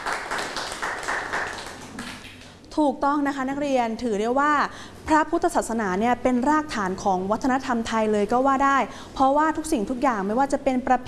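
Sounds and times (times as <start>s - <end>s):
students clapping hands in a classroom: 0.0s - 2.6s
speech: 2.8s - 11.0s.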